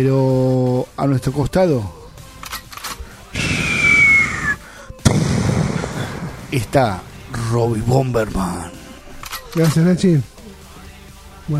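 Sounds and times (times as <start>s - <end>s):
speech: 0.0s - 2.0s, 6.5s - 8.8s, 9.5s - 10.3s
bazooka shot whistle: 3.4s - 4.7s
bazooka shot bang: 5.0s - 7.6s.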